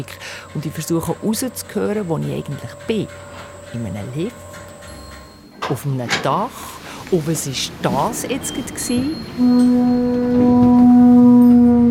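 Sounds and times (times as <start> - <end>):
speech: 0.0 - 4.4, 5.7 - 11.1
conch shell horn blown by a musician: 9.4 - 11.8.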